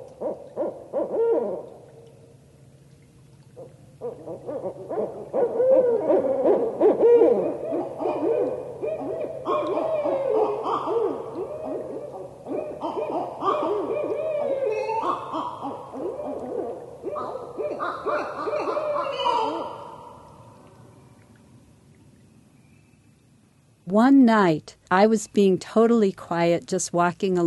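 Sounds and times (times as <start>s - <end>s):
pair of barred owls hooting and cackling territorial calls: 0.1s - 1.8s, 3.6s - 20.3s
speech: 24.3s - 27.4s.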